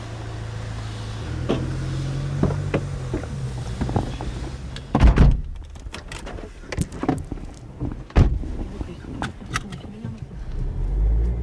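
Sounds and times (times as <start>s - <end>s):
heavy car door thunks: 1.4s - 10.1s
rustling and shuffling of people climbing into a home care worker's car: 2.5s - 11.4s.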